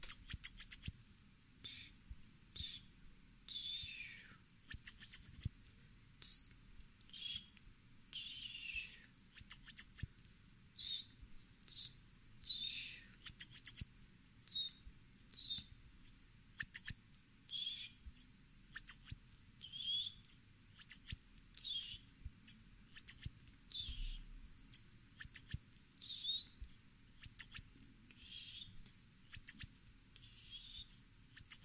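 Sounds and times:
scissors snipping hair: 0.0 - 1.0, 4.6 - 5.5, 9.3 - 10.1, 13.2 - 13.9, 20.2 - 21.6, 22.9 - 23.4, 24.7 - 25.6, 27.2 - 27.6, 29.3 - 29.8, 31.3 - 31.6
faint low hum: 0.0 - 31.6.

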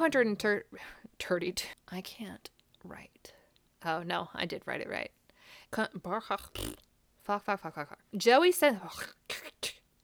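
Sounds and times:
speech: 0.0 - 9.8
person burping: 6.4 - 6.8.

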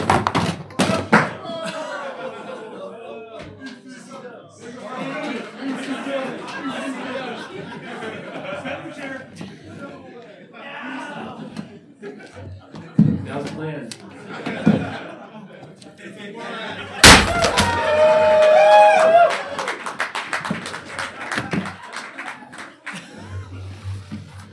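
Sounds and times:
people chatting: 0.8 - 17.0
people laughing: 1.1 - 13.0, 14.0 - 24.5
prop chair slammed in wrestling-style chair shot: 17.0 - 17.9.

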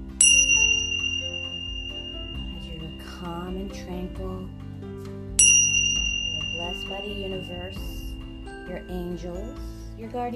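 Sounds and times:
meditation bell ringing: 0.0 - 4.0, 5.4 - 9.7
speech: 3.2 - 4.6, 6.7 - 8.0, 8.7 - 10.3.

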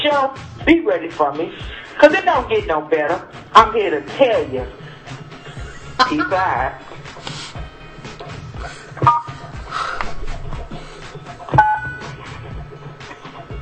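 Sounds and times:
speech: 0.0 - 4.8, 6.0 - 6.9, 8.6 - 9.3
laughter: 4.8 - 7.6
telephone keypad tones pressed while leaving a voicemail: 9.0 - 9.4, 11.6 - 12.1.

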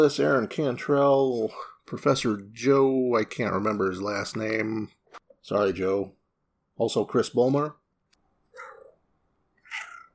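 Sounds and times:
speech: 0.0 - 6.2, 6.8 - 7.8
cat meowing: 9.6 - 10.1.

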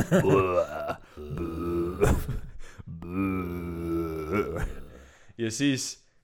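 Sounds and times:
laughter: 0.0 - 0.8
speech: 0.0 - 1.3, 2.0 - 2.4, 5.4 - 6.0
person imitating a video game zombie groan with their voice: 0.0 - 5.2.

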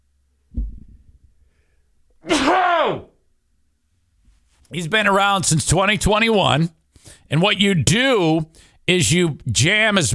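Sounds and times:
loud sneeze: 2.2 - 3.1
speech: 4.7 - 10.1
short rough intake of breath: 6.9 - 7.3, 8.5 - 8.8.

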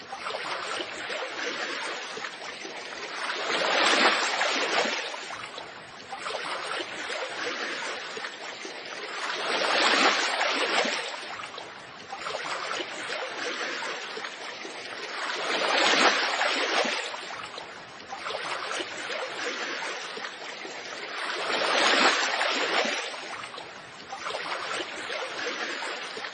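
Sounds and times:
waves washing in and out with fine splashing: 0.0 - 26.3.

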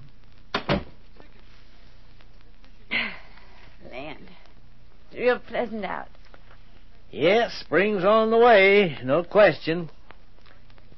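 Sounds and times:
door swinging shut with thuds: 0.5 - 1.0
speech: 5.1 - 6.2, 7.1 - 10.0.

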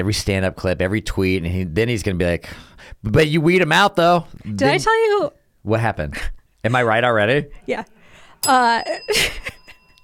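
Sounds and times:
speech: 0.0 - 9.6
bell ringing with bright metallic tone: 8.4 - 10.0.

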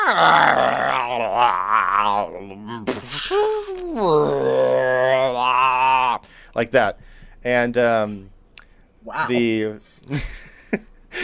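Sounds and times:
human voice imitating a deep rumbling roar-growl: 0.0 - 6.2
speech: 0.1 - 5.8, 6.6 - 8.3, 9.0 - 11.2.

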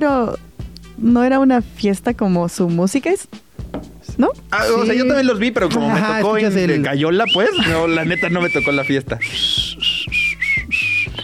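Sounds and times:
speech: 1.0 - 3.4, 4.2 - 9.9
person who cannot whistle attempting to whistle: 7.3 - 11.2.

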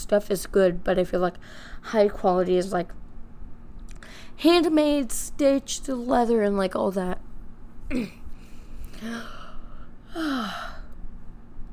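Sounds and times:
speech: 0.1 - 3.0, 4.0 - 7.2, 7.9 - 8.2, 9.0 - 9.4, 10.2 - 10.8
drawn-out yawn with breathy voiced sighs: 9.0 - 10.9.

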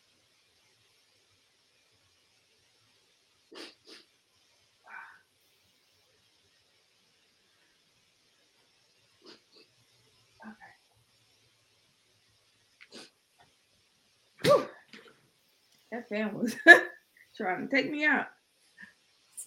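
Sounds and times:
nasal snorting: 3.5 - 4.0, 9.2 - 9.7
person blowing nose: 3.5 - 4.1
speech: 15.9 - 18.4.

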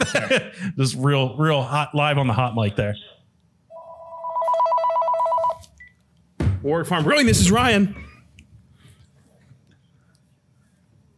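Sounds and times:
speech: 0.0 - 3.1, 6.6 - 8.1
faint noise: 0.0 - 11.1
brewery telephone ringing with electronic two-tone warble: 3.7 - 5.8.

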